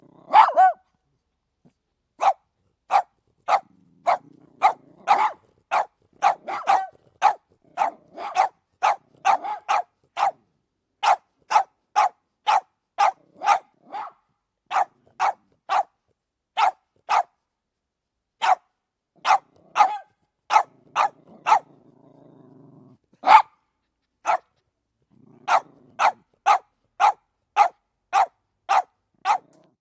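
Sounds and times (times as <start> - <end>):
dog barking: 0.2 - 0.9, 2.2 - 10.4, 11.0 - 16.0, 16.6 - 17.4, 18.4 - 21.8, 23.2 - 23.6, 24.2 - 24.6, 25.4 - 29.7.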